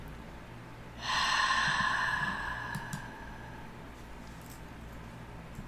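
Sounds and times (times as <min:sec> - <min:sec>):
deep breathing, inhaling and exhaling: 0:00.9 - 0:04.2.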